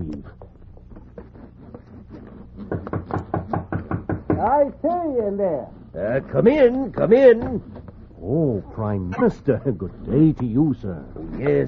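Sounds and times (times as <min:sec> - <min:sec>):
knocking on a door: 0:02.7 - 0:04.6
speech: 0:04.4 - 0:11.6.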